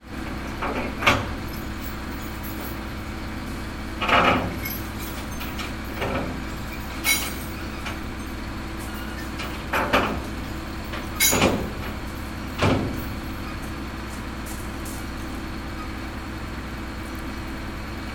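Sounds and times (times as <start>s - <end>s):
transport truck hoist lifting skip: 0.3s - 18.0s
skip chains being removed: 4.3s - 13.7s.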